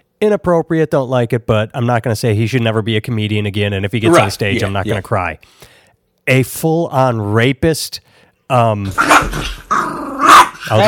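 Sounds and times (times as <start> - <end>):
speech: 0.2 - 9.8, 10.7 - 10.8
dog growling: 8.9 - 10.8
dog barking sharply: 10.2 - 10.8.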